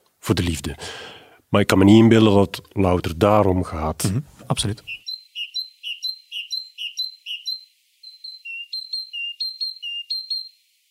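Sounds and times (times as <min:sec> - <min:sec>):
speech: 0:00.3 - 0:05.0
great tit giving two-note alarm calls: 0:04.8 - 0:10.6.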